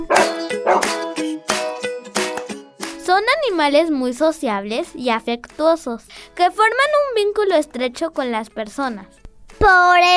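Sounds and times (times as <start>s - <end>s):
dog barking: 0.0s - 1.0s
speech: 3.5s - 10.1s.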